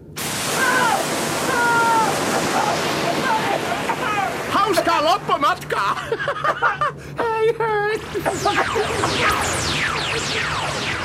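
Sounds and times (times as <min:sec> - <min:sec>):
water cannons spraying water: 0:00.2 - 0:05.3
laughter: 0:02.1 - 0:04.8, 0:05.7 - 0:09.2
speech: 0:05.0 - 0:11.0.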